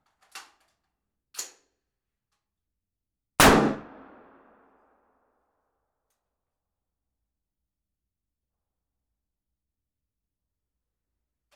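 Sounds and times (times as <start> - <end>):
5.56 assault rifle single shot in a small room: 3.4 - 4.6.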